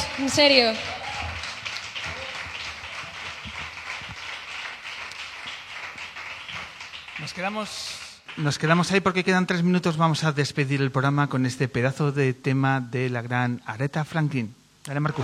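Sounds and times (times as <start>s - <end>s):
audience applause: 0.0s - 8.6s
speech: 0.2s - 1.0s, 7.4s - 15.2s.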